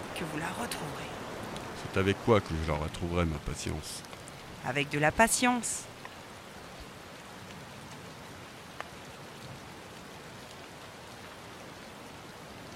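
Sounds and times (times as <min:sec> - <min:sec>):
steady rain falling: 0:00.0 - 0:12.7
speech: 0:00.4 - 0:01.2, 0:01.9 - 0:05.9.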